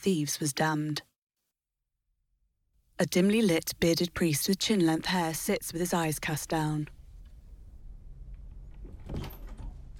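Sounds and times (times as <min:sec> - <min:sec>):
speech: 0:00.0 - 0:01.1, 0:03.0 - 0:07.0
low room rumble: 0:06.9 - 0:09.9
door opening with a scraping rolling mechanical sound: 0:08.0 - 0:09.9.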